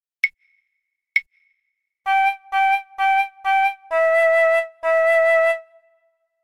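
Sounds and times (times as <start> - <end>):
transverse flute: 2.1 - 6.2.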